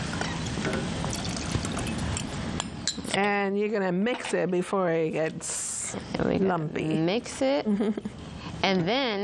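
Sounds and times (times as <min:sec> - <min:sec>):
liquid poured into a cooking pot of berries for compote: 0:00.2 - 0:02.2
speech: 0:03.1 - 0:09.2.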